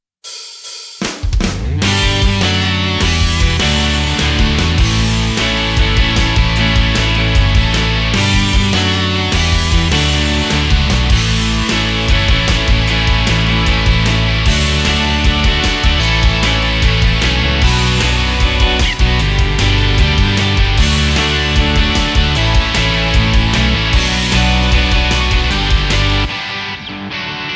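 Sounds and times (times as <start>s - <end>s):
rock style accompaniment on a Korg Pa4X keyboard: 1.2s - 27.5s.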